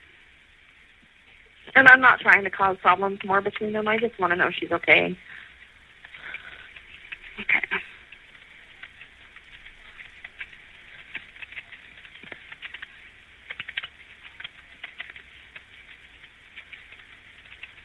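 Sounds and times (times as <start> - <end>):
speech: 1.8 - 5.4
typing on a computer keyboard: 8.7 - 17.8.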